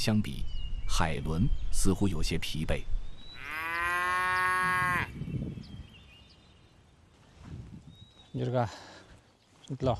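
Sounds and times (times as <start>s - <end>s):
speech: 0.0s - 3.0s, 8.4s - 8.9s, 9.7s - 9.9s
cow mooing in a herd of cattle: 3.4s - 5.1s.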